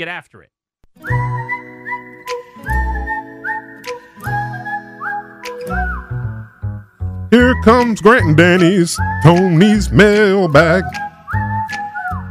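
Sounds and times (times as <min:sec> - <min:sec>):
speech: 0:00.0 - 0:01.4, 0:07.3 - 0:11.8
pitch whistle sounding sustained reedy notes: 0:01.0 - 0:06.8, 0:08.9 - 0:12.2.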